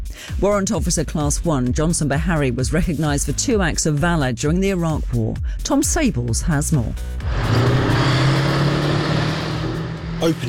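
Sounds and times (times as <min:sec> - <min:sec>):
speech: 0:00.4 - 0:07.8, 0:10.2 - 0:10.4
Warrior armoured vehicle engine droning while driving laps around an arena: 0:07.2 - 0:10.4.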